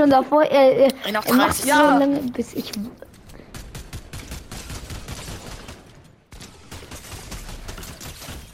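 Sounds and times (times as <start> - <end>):
speech: 0.0 - 3.1
rapid video game gunfire: 3.1 - 8.5.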